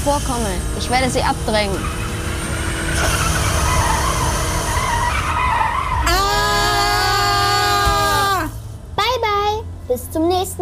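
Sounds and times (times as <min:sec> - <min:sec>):
speech: 0:00.0 - 0:02.0, 0:02.9 - 0:03.4, 0:10.0 - 0:10.6
race car engines roaring through a curve: 0:00.0 - 0:09.0
race car tires screeching through a curve: 0:00.0 - 0:09.0
long high harmonic tire squeal: 0:01.4 - 0:08.5.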